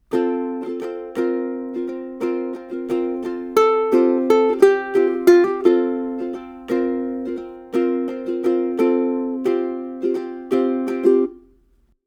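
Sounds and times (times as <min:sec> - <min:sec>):
ukulele lick: 0:00.0 - 0:11.8.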